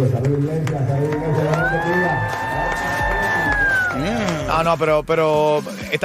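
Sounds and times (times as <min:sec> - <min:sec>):
speech: 0:00.0 - 0:01.4, 0:04.0 - 0:06.0
large crowd cheering and shouting in a church hall: 0:00.6 - 0:04.7.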